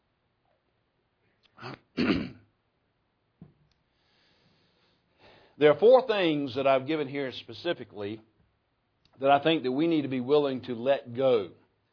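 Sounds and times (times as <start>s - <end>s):
man clearing his throat: 1.6s - 2.5s
speech: 5.6s - 8.3s, 9.2s - 11.6s.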